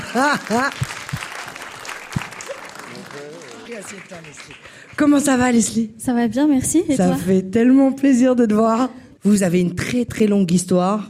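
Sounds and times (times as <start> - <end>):
audience clapping for a guest arriving on a show: 0.0 - 5.7
speech: 0.1 - 0.9, 3.1 - 11.0.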